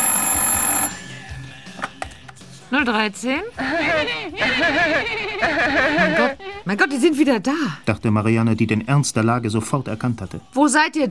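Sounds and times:
telephone ringing in an apartment: 0.0 - 1.8
speech: 2.7 - 11.0
laughter: 3.6 - 6.7.

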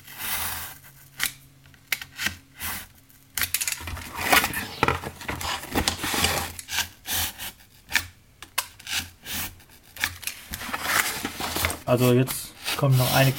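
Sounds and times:
craft knife cutting a window out of a miniature architectural model along a ruler: 0.0 - 1.3, 2.2 - 2.9, 5.4 - 8.1, 8.7 - 13.3
speech: 11.9 - 13.3.

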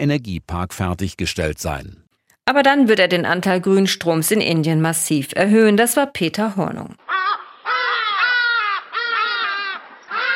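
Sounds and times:
speech: 0.0 - 7.2
hadeda ibis calling: 7.0 - 10.3.

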